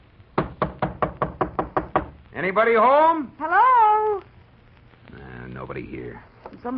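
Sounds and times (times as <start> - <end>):
firm knocks on a wooden door: 0.4 - 2.2
speech: 2.4 - 4.3, 5.6 - 6.7.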